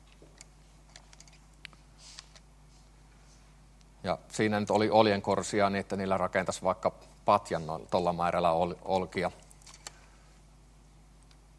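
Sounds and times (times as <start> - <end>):
steady low electrical hum: 0.0 - 11.5
quiet irregular computer mouse clicks: 0.4 - 2.5
speech: 4.1 - 9.4.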